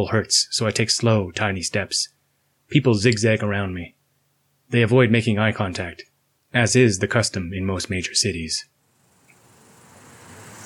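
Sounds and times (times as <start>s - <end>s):
speech: 0.0s - 4.0s, 4.7s - 8.8s
car engines gently whirring: 9.2s - 10.6s
tires rolling on pavement: 9.2s - 10.6s
cars passing on a city street: 9.4s - 10.6s.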